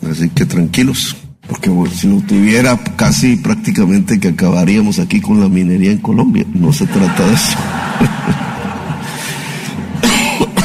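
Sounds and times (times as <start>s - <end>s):
speech: 0.2s - 8.4s
laughter: 6.8s - 10.0s
person coughing: 10.0s - 10.6s.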